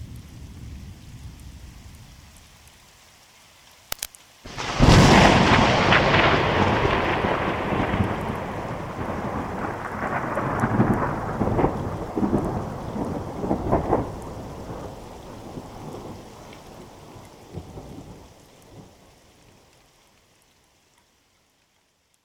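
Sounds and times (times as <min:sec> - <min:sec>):
steady rain: 0:00.0 - 0:22.2
thunder: 0:04.5 - 0:16.9.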